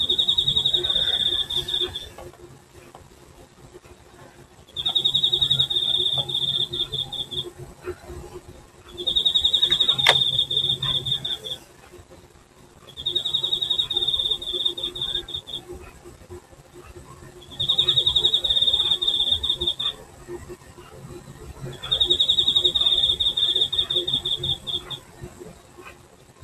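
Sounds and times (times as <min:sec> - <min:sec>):
insects trilling in Hokkaido: 0:00.0 - 0:02.2, 0:04.7 - 0:08.0, 0:08.9 - 0:11.7, 0:12.9 - 0:15.8, 0:17.2 - 0:20.0, 0:21.6 - 0:25.1
faint low hum: 0:00.0 - 0:26.4.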